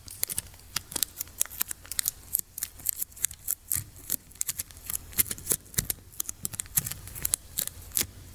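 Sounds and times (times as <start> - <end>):
adhesive tape crackling and ripping as it is pulled and torn: 0.0 - 8.1.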